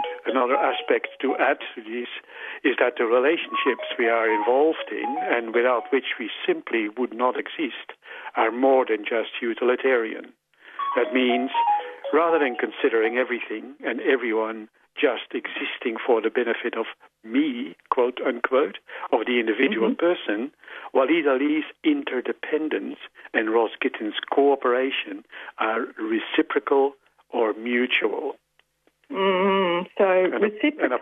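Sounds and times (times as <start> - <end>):
phone ringtone: 0.0 - 1.6, 3.3 - 6.0, 10.8 - 13.2
man talking over a narrow phone-like line: 0.0 - 28.4, 30.2 - 31.0
speech: 0.4 - 28.4, 29.1 - 31.0.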